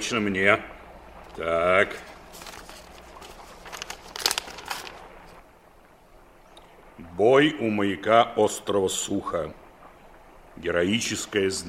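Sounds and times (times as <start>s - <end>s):
speech: 0.0s - 0.8s, 1.4s - 2.1s, 7.2s - 9.6s, 10.6s - 11.6s
paper crinkling as heavy registered mail parcel is unwrapped: 1.3s - 5.4s.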